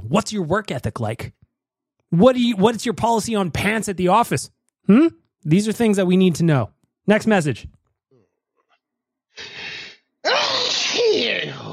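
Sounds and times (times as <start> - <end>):
speech: 0.1 - 1.4, 2.1 - 7.8
breathy intake: 9.4 - 11.7
person sneezing: 9.4 - 11.7.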